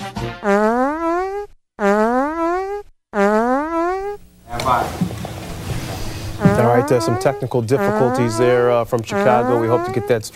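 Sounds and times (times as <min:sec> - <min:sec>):
long loud buzzy farts: 0:00.4 - 0:10.2
busy cluttered sound: 0:03.9 - 0:10.3
speech: 0:06.9 - 0:10.3.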